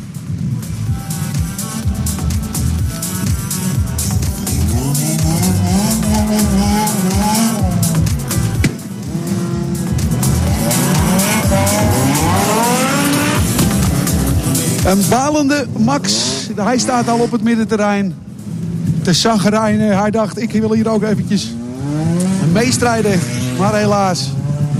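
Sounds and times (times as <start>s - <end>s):
racing car engines roaring and revving at a rodeo-driving race in the Netherlands: 0.0s - 24.7s
racing car tires squealing and skidding: 4.6s - 8.0s, 9.1s - 17.7s, 21.5s - 24.7s
speech: 14.9s - 18.3s, 19.1s - 24.4s.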